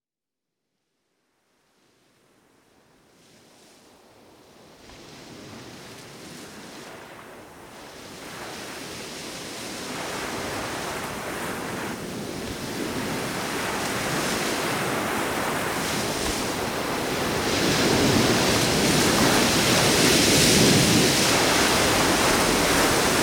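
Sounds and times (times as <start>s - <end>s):
ocean waves: 5.0s - 23.2s.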